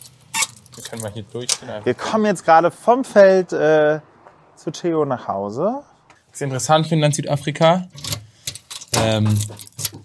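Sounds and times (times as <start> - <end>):
speech: 0.8 - 8.1, 8.9 - 9.7
large bunch of keys jangling while carried: 8.0 - 10.0.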